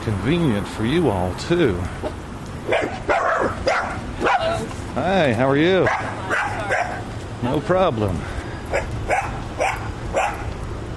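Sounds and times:
speech: 0:00.1 - 0:03.7, 0:05.0 - 0:06.8, 0:07.4 - 0:08.9
dog barking: 0:02.6 - 0:04.6, 0:05.8 - 0:07.0, 0:08.7 - 0:10.5.

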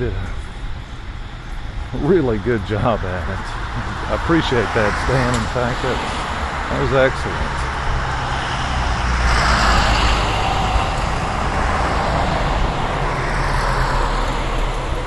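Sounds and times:
speech: 0:00.0 - 0:00.4, 0:01.9 - 0:07.6
car passing by: 0:03.5 - 0:15.0.

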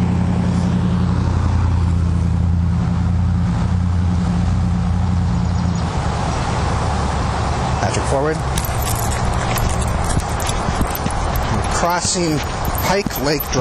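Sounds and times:
car engine rumble on the road: 0:00.0 - 0:13.5
speech: 0:08.2 - 0:08.5, 0:11.9 - 0:13.5.

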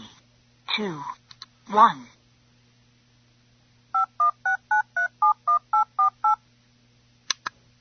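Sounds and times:
speech: 0:00.8 - 0:02.2
DTMF touch-tone telephone dialing beeps: 0:04.0 - 0:06.4.

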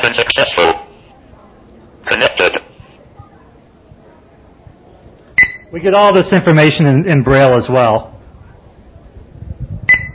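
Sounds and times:
speech: 0:00.0 - 0:00.9, 0:02.0 - 0:02.7, 0:05.7 - 0:08.1
low murmuring rumble: 0:00.0 - 0:05.3, 0:08.0 - 0:10.1
short bright electronic screen reader progress beep: 0:05.4 - 0:05.8, 0:09.9 - 0:10.1.

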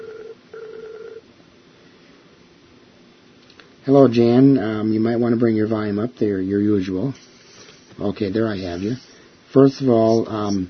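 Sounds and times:
electronic phone ringback tone on an outgoing call: 0:00.0 - 0:01.2
speech: 0:03.8 - 0:07.4, 0:08.0 - 0:10.6.

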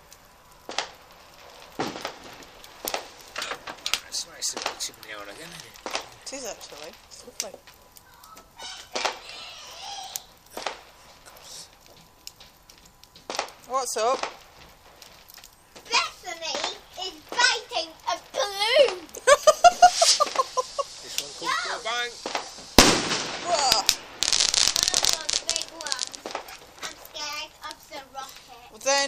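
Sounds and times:
fireworks banging and crackling: 0:00.0 - 0:29.0
speech: 0:04.5 - 0:07.8, 0:13.7 - 0:14.4
children chattering and shouting excitedly: 0:08.0 - 0:10.5, 0:15.8 - 0:19.2, 0:23.4 - 0:28.9
laughter: 0:19.2 - 0:21.1.

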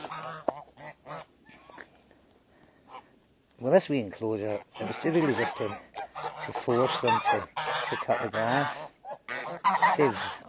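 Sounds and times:
geese honking: 0:00.0 - 0:01.9, 0:02.8 - 0:03.2, 0:04.3 - 0:10.4
speech: 0:03.6 - 0:08.9, 0:09.7 - 0:10.4.

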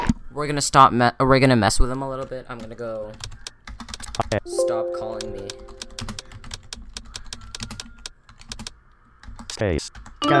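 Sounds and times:
speech: 0:00.4 - 0:03.4, 0:04.3 - 0:05.8, 0:09.6 - 0:10.3
typing a chat message on a computer keyboard: 0:02.6 - 0:04.4, 0:05.3 - 0:10.2.

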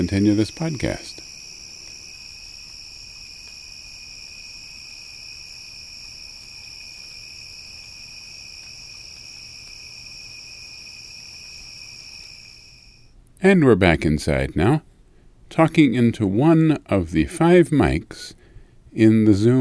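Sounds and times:
speech: 0:00.0 - 0:01.2, 0:13.4 - 0:14.9, 0:15.5 - 0:19.5
chorus of crickets chirping at night: 0:00.0 - 0:13.2.

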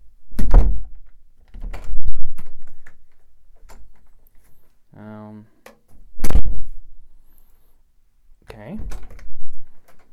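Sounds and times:
apartment doors thudding shut: 0:00.3 - 0:02.5, 0:08.8 - 0:09.3.

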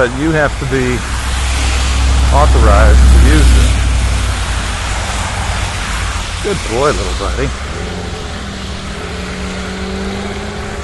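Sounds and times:
speech: 0:00.0 - 0:01.2, 0:02.3 - 0:03.8, 0:06.4 - 0:08.2
car engine idling in a driveway: 0:00.0 - 0:10.8.

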